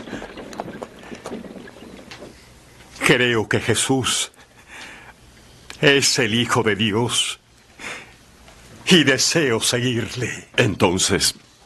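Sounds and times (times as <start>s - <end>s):
hoof clops: 0.0s - 2.4s
horse-drawn carriage rumbling to a stop: 0.0s - 2.4s
creaking knocks of a horse-drawn carriage: 0.0s - 2.5s
speech: 3.1s - 4.4s, 5.8s - 7.9s, 8.9s - 11.5s.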